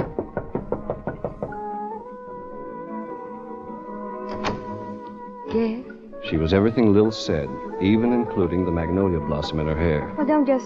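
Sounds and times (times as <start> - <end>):
knocking on a wooden dressing room door backstage: 0.0 - 1.7
speech: 5.5 - 10.6.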